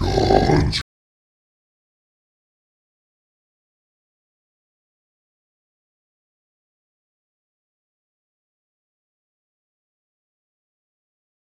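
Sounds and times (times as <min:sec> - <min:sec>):
angry zombie pig: 0:00.0 - 0:00.8.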